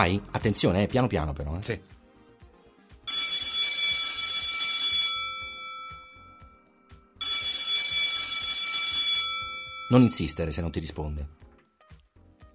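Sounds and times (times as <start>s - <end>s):
speech: 0.0s - 2.0s, 9.9s - 11.4s
doorbell ringing: 3.1s - 10.7s.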